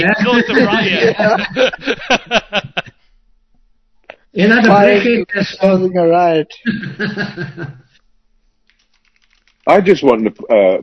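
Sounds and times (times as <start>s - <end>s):
speech: 0.0s - 2.8s, 4.4s - 7.8s, 9.6s - 10.8s
laughter: 0.0s - 3.0s, 6.6s - 7.8s
soft rapid computer keyboard clicks: 8.6s - 10.6s.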